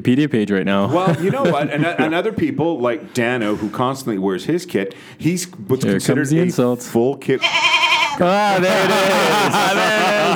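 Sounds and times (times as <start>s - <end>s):
speech: 0.0s - 10.3s
laughter: 0.8s - 2.4s, 8.3s - 10.3s
goat bleating: 7.4s - 8.3s.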